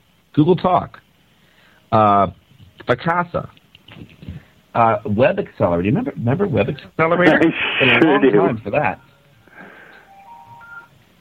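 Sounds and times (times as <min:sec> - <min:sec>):
faint hiss: 0:00.0 - 0:11.1
speech: 0:00.4 - 0:01.0, 0:01.9 - 0:09.1
laughter: 0:07.2 - 0:08.7
cell phone electronic ringtone beeps: 0:10.1 - 0:10.9.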